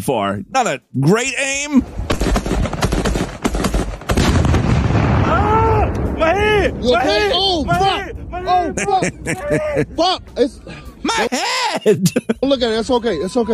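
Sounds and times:
speech: 0.0s - 2.1s, 6.3s - 13.5s
gunshots: 1.9s - 5.4s
heavy explosion with flying shrapnel: 1.9s - 10.0s
laughter: 8.5s - 13.5s.

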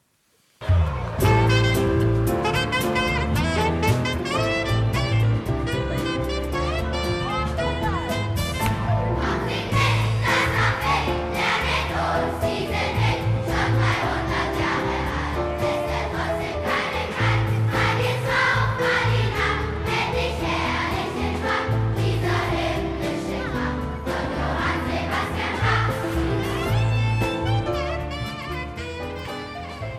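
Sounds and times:
full band with a pulsing bass: 0.6s - 29.9s
large children's choir of third-graders singing a pop-style melody: 9.1s - 26.8s.

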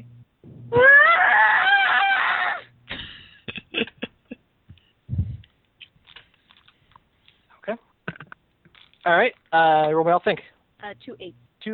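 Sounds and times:
person acting a scream of excruciating pain: 0.7s - 2.7s
speech: 9.1s - 11.7s.

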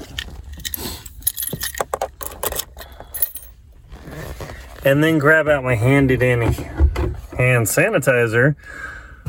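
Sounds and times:
car keys jangling into an ignition: 0.0s - 3.6s
speech: 4.8s - 6.8s, 7.4s - 8.9s.

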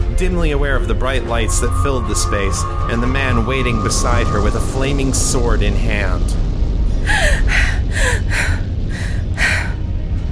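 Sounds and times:
low rumble: 0.0s - 10.3s
speech: 0.2s - 8.6s
person gasping for breath: 7.1s - 9.8s.

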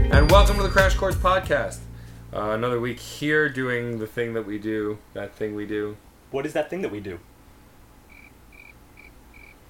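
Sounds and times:
speech: 0.1s - 7.3s
low hum: 1.4s - 9.6s
crickets chirping: 8.0s - 9.6s.

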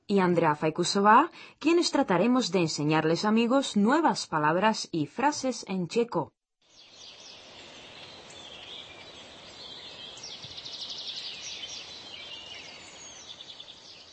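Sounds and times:
speech: 0.1s - 6.4s
birds singing in spring: 6.7s - 14.1s.

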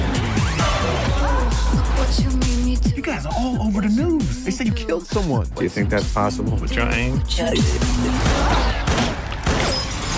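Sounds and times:
dense loud film soundtrack: 0.0s - 10.1s
speech: 3.2s - 8.8s
gunfire warning shots in a film scene: 7.9s - 10.1s.

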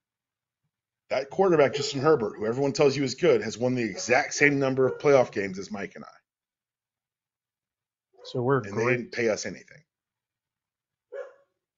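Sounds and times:
speech: 1.1s - 6.2s, 8.3s - 9.9s
dog barking: 1.5s - 2.3s, 3.8s - 5.4s, 8.2s - 9.0s, 11.1s - 11.6s.

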